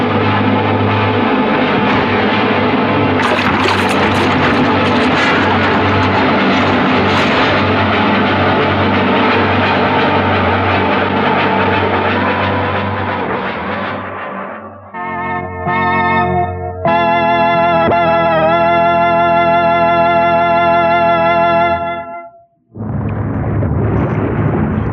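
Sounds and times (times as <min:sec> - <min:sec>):
small jet plane roaring as it dives low over the ocean: 0:00.0 - 0:21.8, 0:22.8 - 0:24.9
small jet plane crashing into the sea: 0:03.2 - 0:05.7.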